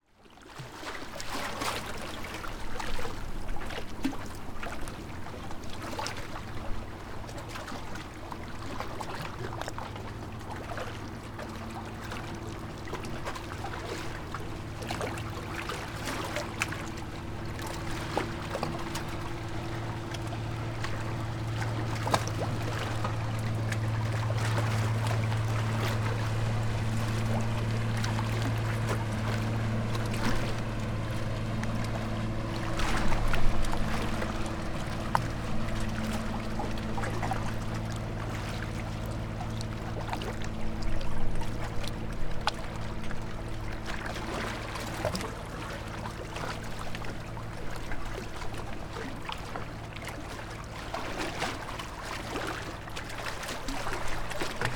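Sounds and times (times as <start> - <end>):
small transport motorboat passing into harbour: 0.0 - 54.7
boat wake waves on rocks: 11.0 - 54.7.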